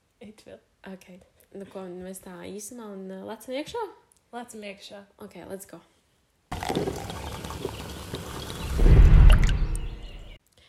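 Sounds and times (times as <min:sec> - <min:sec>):
speech: 0:00.4 - 0:05.9
iced coffee pouring into a cup: 0:06.5 - 0:09.7.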